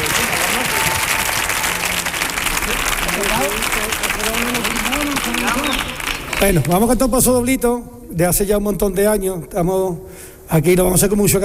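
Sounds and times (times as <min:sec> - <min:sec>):
scattered voices and cheers in an audience: 0:00.0 - 0:06.5
audience applause: 0:00.0 - 0:07.0
speech: 0:06.4 - 0:11.4.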